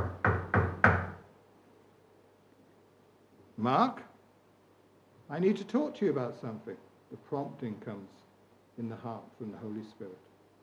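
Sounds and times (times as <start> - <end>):
firm knocking on a wooden door: 0.0 - 1.2
speech: 3.6 - 4.1, 5.3 - 8.2, 8.8 - 10.3.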